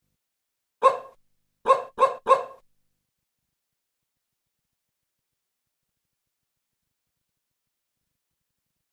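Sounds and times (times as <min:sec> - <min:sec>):
dog barking: 0:00.8 - 0:02.6.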